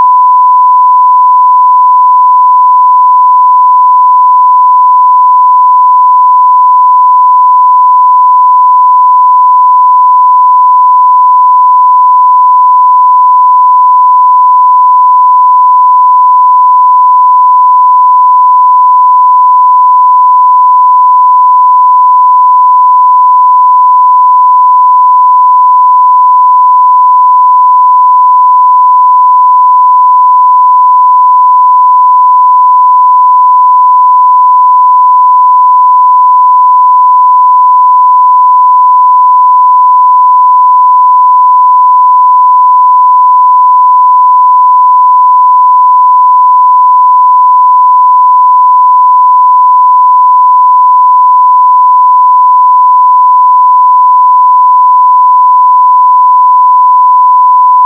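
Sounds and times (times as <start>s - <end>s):
1 kHz sine tone: 0.0s - 57.8s.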